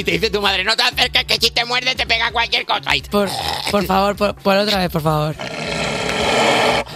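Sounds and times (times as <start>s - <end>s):
speech: 0.0s - 5.8s
recorded animal roar, supposedly a wolf: 5.4s - 6.9s.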